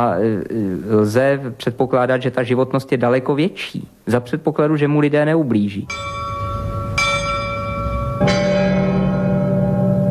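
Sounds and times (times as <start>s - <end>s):
speech: 0.0s - 6.3s
large church bell swinging and ringing: 5.9s - 10.1s.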